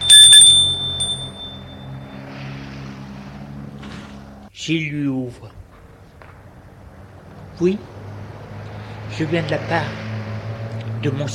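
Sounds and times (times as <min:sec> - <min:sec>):
doorbell ringing at a house: 0:00.0 - 0:02.0
speech: 0:04.6 - 0:05.6, 0:07.6 - 0:08.0, 0:09.1 - 0:10.0, 0:11.0 - 0:11.3.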